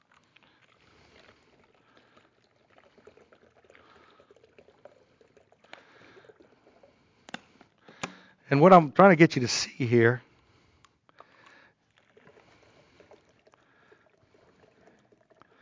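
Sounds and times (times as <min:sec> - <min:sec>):
water pouring into a glass: 0:00.0 - 0:07.6, 0:11.2 - 0:15.5
speech: 0:08.5 - 0:10.3.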